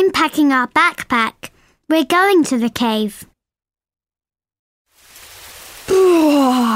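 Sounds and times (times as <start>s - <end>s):
speech: 0.0s - 3.3s
rain falling on a foggy island: 4.9s - 6.7s.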